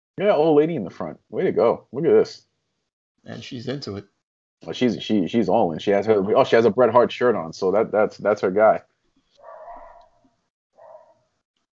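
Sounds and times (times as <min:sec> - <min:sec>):
speech: 0:00.2 - 0:02.5, 0:03.2 - 0:08.9
dog barking: 0:09.4 - 0:10.2, 0:10.8 - 0:11.2.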